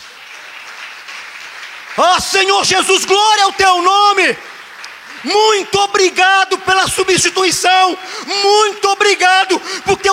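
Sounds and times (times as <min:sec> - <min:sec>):
audience applauding: 0:00.0 - 0:10.1
speech: 0:02.0 - 0:04.5, 0:05.2 - 0:10.1.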